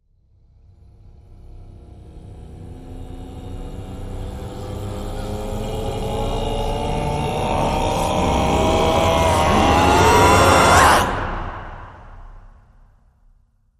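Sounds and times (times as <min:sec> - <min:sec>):
vocal shouting: 0:04.6 - 0:12.0.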